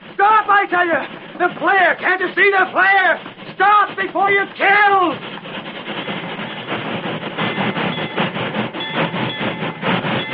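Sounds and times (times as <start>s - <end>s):
train wheels clattering: 0.0s - 10.3s
speech: 0.2s - 5.3s.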